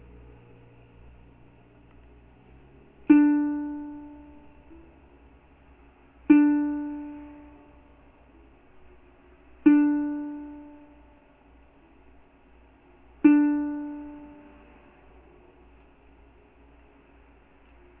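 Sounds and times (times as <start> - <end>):
ukulele playing in D: 3.0 - 5.2, 6.2 - 8.5, 9.6 - 11.2, 13.2 - 15.1.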